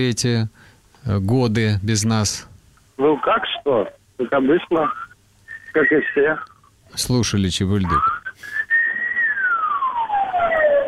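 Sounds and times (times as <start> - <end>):
speech: 0.0 - 5.1, 5.7 - 8.6
siren of a passing vehicle: 9.5 - 10.8.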